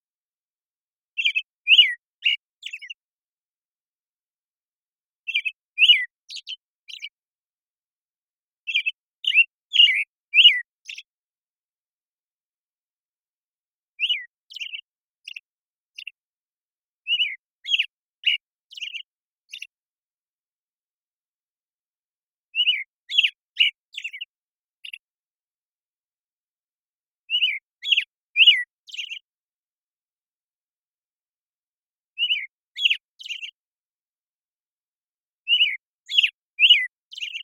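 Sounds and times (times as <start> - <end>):
American Robin singing morning song: 1.1 - 3.2, 5.2 - 7.3, 8.6 - 11.3, 13.9 - 16.3, 17.0 - 19.9, 22.4 - 25.2, 27.2 - 29.4, 32.2 - 33.7, 35.4 - 37.4.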